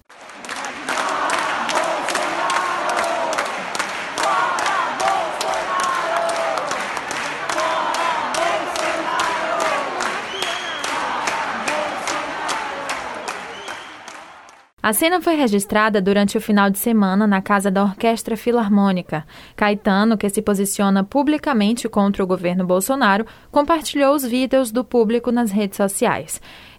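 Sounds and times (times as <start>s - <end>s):
scattered clapping: 0.0s - 14.7s
large concert audience chanting a protest slogan in unison: 0.1s - 14.7s
speech: 14.9s - 26.7s.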